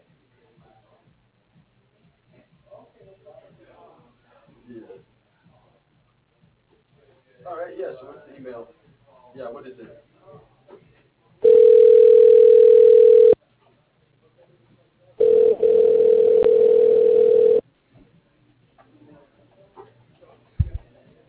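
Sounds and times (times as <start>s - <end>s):
phone call ringback tone through a telephone line: 11.4s - 13.4s, 15.2s - 17.6s.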